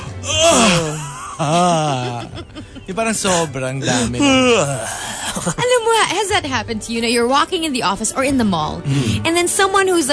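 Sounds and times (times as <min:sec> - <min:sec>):
voice imitating a big exaggerated yawn: 0:00.1 - 0:02.1, 0:04.1 - 0:05.2
speech: 0:00.2 - 0:10.1
laughter: 0:00.6 - 0:06.1.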